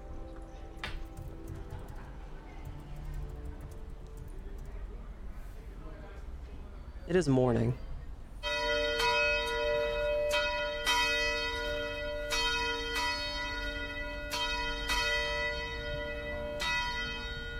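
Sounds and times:
speech: 0:07.1 - 0:07.8
large town bell ringing in the morning: 0:08.4 - 0:17.5.

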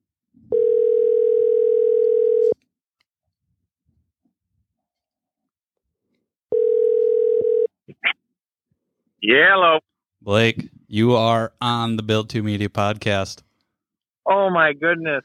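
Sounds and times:
phone call ringing tone over a Bluetooth connection: 0:00.5 - 0:02.6, 0:06.5 - 0:07.7
speech: 0:09.2 - 0:13.5, 0:14.3 - 0:15.2.

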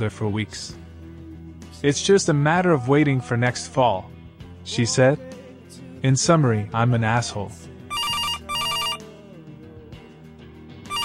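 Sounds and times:
speech: 0:00.0 - 0:00.8, 0:01.7 - 0:07.7
telephone ringing in electronic bursts: 0:07.9 - 0:09.1.

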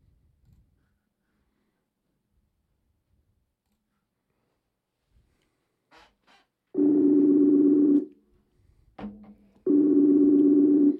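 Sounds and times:
outgoing phone call ringback tone with long buzzing rings: 0:06.8 - 0:08.1, 0:09.7 - 0:10.9.

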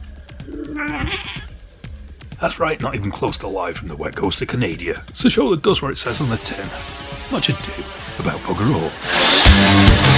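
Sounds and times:
speech: 0:00.5 - 0:01.5, 0:02.4 - 0:10.0
cat meowing: 0:00.5 - 0:01.6.

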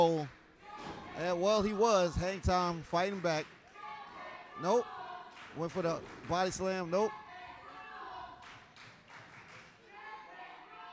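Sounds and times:
speech: 0:00.0 - 0:00.4, 0:01.2 - 0:03.6, 0:04.6 - 0:07.2
wrestling match crowd clapping along in a steady rhythm: 0:02.5 - 0:03.8, 0:05.3 - 0:07.1, 0:08.4 - 0:09.9.

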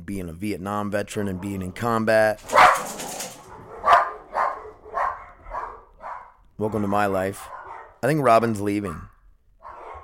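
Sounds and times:
speech: 0:00.1 - 0:03.0, 0:06.6 - 0:09.1
dogs barking: 0:01.1 - 0:08.2, 0:09.1 - 0:10.0.

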